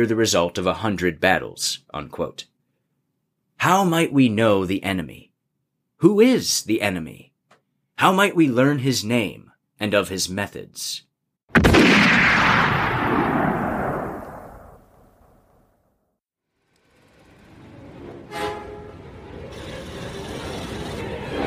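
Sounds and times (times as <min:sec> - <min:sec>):
speech: 0:00.0 - 0:02.5, 0:03.6 - 0:05.3, 0:06.0 - 0:07.3, 0:08.0 - 0:12.7
single loud rifle shot with long echo: 0:11.6 - 0:14.9.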